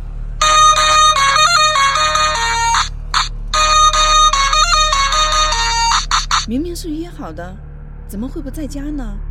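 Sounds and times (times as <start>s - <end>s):
low steady hum: 0.1s - 7.7s
loud electronic doorbell chime with a repeating melodic tone pattern: 0.4s - 6.5s
speech: 6.5s - 9.2s.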